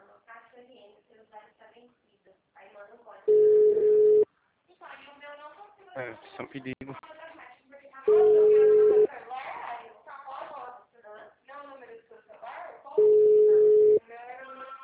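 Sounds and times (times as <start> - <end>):
telephone ringback tone during an unanswered call: 3.3 - 4.2, 8.1 - 9.1, 13.0 - 14.0
speech: 6.0 - 7.2.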